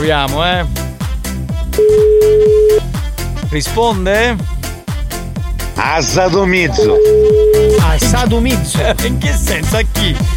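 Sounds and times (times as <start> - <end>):
speech: 0.0 - 0.8, 1.8 - 2.8, 3.5 - 4.5, 5.8 - 10.3
rhythmic music with a pulsing bass line: 0.0 - 10.3
telephone ringback tone on an outgoing call: 1.8 - 2.9, 6.9 - 7.9
laughter: 8.5 - 9.3.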